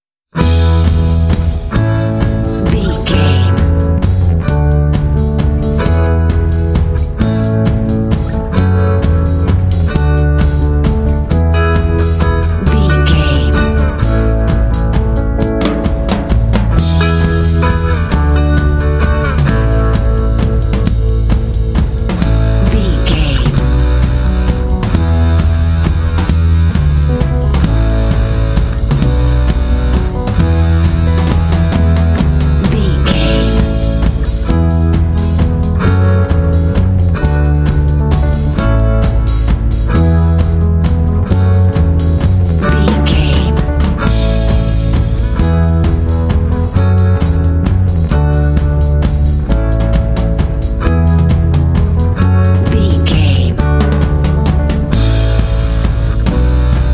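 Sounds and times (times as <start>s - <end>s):
rusty slide guitar twang: 0.4s - 56.9s.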